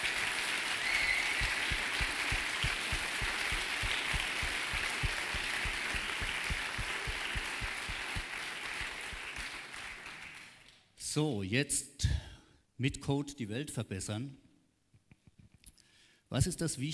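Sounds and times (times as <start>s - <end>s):
audience applauding the event's organizing team: 0.0s - 10.8s
speech: 11.2s - 11.9s, 12.8s - 14.4s, 16.3s - 16.9s.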